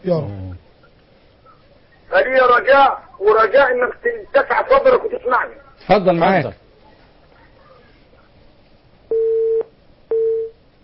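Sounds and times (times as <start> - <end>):
speech: 0.0 - 0.4, 2.1 - 6.6
telephone busy tone after a call is cut off: 9.1 - 10.6.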